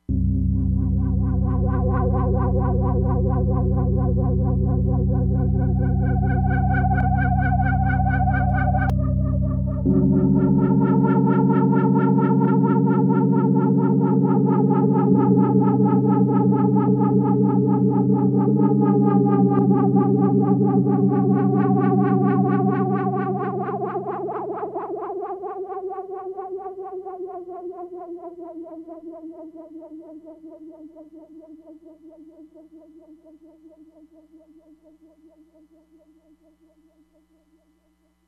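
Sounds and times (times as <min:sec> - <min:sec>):
eerie Crumar Bit 99 synthesizer sound: 0:00.1 - 0:28.3.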